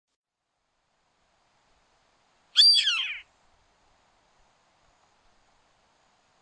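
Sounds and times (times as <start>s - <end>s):
Yellow-headed Caracara Milvago chimachima chimachima screeching call: 2.6s - 3.3s.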